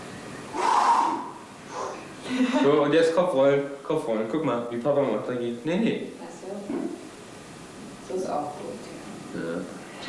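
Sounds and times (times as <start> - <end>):
breathing in and out during an exercise session: 0.5 - 2.6
speech: 2.4 - 6.8, 8.3 - 10.0.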